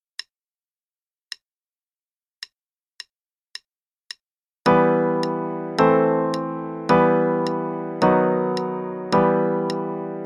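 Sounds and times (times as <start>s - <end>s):
E minor chord progression: 4.7s - 10.2s.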